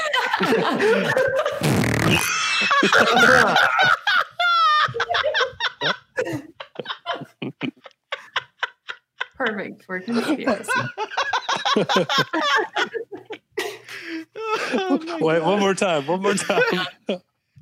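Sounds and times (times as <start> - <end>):
overlapping laughter and rapid giggling: 0.0 - 17.3
speech: 0.4 - 4.0, 9.9 - 11.0, 11.8 - 12.6, 15.2 - 17.2
fart sound effect played by clicking a button: 1.6 - 2.4.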